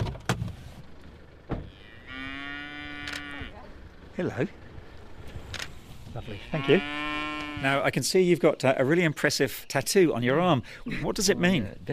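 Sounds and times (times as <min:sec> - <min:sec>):
outdoor noise: 0:00.0 - 0:11.9
cow on a farm mooing: 0:01.6 - 0:03.7, 0:06.1 - 0:07.9
speech: 0:04.2 - 0:04.6, 0:06.2 - 0:11.9.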